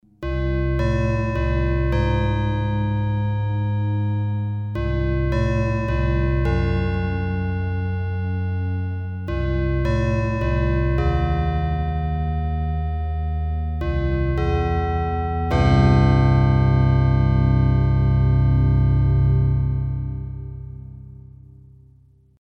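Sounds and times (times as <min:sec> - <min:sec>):
Yamaha TG33 FM bells: 0:00.2 - 0:20.5.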